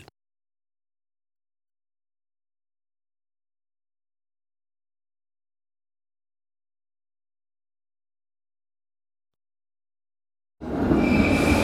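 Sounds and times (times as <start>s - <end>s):
EuroCity passenger train pulling into a station platform: 10.6s - 11.6s.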